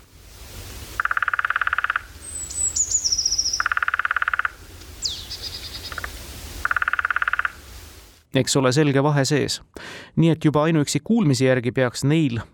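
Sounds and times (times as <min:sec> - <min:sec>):
thin bird calls: 0:01.0 - 0:07.7
lesser spotted woodpecker drumming: 0:01.0 - 0:07.8
speech: 0:08.4 - 0:12.5.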